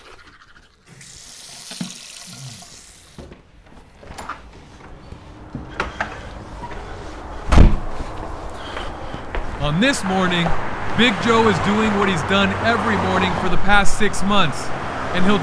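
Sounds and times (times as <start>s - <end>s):
running water: 0.0s - 3.2s
front door shutting with a loud thud: 7.5s - 7.9s
speech: 9.6s - 15.4s.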